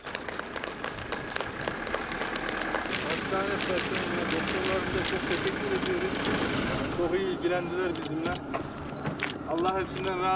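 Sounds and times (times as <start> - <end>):
small group applauding discharged hospital patients: 0.0 - 6.4
speech: 3.3 - 8.6, 9.5 - 10.3.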